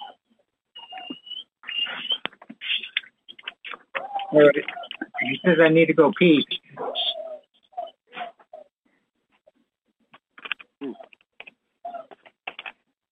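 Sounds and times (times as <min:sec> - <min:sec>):
dog whining: 0:00.0 - 0:02.3, 0:03.8 - 0:05.6, 0:06.8 - 0:08.7
dog whimpering: 0:00.8 - 0:02.3, 0:03.9 - 0:05.6, 0:06.8 - 0:08.7, 0:11.9 - 0:12.2
speech: 0:04.3 - 0:06.6.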